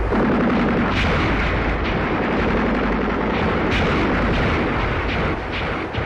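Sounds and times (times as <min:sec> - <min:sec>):
artillery blasts in battle: 0:00.0 - 0:06.0
gunfire in battle: 0:00.0 - 0:06.0.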